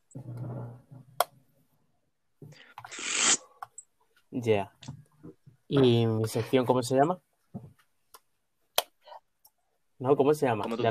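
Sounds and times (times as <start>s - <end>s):
playing cards being shuffled: 2.9s - 3.4s
speech: 4.4s - 5.0s, 5.7s - 7.3s, 10.0s - 10.8s.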